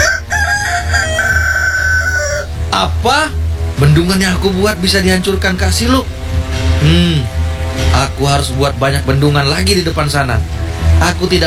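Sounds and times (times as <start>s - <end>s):
rooster crowing: 0.0s - 2.6s
speech: 2.8s - 6.2s, 6.8s - 11.4s.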